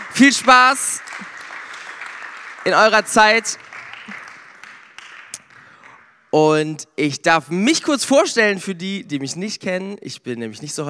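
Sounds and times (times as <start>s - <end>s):
audience including children applauding: 0.0s - 6.3s
speech: 0.2s - 1.3s, 2.6s - 3.6s, 6.3s - 10.8s.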